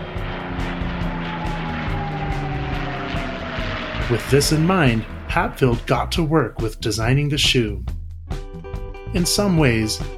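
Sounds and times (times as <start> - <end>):
P-51 Mustang propeller fighter plane engine droning in flight: 0.0 - 8.0
speech: 4.1 - 8.0, 9.1 - 10.1.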